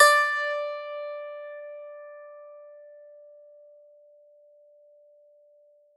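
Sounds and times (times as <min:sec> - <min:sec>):
strings plucked on D4: 0:00.0 - 0:01.3.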